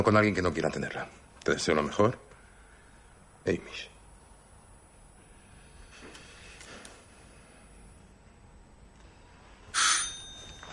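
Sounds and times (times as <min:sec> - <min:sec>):
speech: 0:00.0 - 0:02.3, 0:03.4 - 0:03.9
bright metallic doorbell chime: 0:09.7 - 0:10.7.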